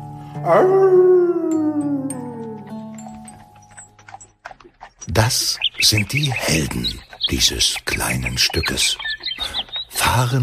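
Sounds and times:
speech: 0.4 - 1.6, 5.2 - 9.1, 10.0 - 10.4
wolf howling: 0.4 - 2.9.

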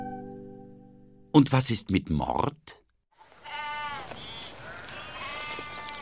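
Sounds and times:
speech: 1.4 - 2.8
sheep bleating loudly: 3.4 - 6.0.

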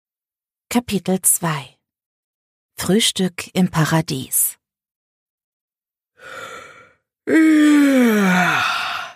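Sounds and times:
speech: 0.7 - 1.8, 2.8 - 4.6, 7.3 - 8.8
person yawning: 6.2 - 9.1.

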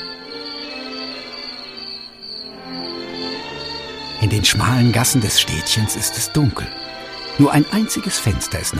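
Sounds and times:
crickets chirping at night: 0.0 - 8.7
speech: 4.2 - 8.7.

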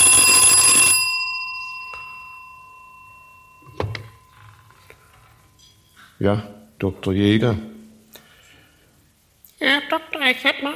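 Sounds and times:
telephone bell ringing: 0.0 - 5.1
clunk: 3.6 - 4.8
speech: 6.2 - 7.7, 9.9 - 10.7.

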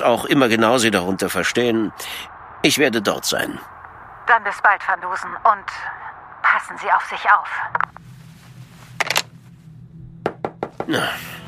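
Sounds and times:
speech: 0.0 - 6.0, 6.6 - 8.0, 10.9 - 11.4
low hum: 0.0 - 11.4
brief rustling swish: 8.0 - 9.7
sharp knocks on a door by a newspaper deliverer: 10.2 - 11.0.

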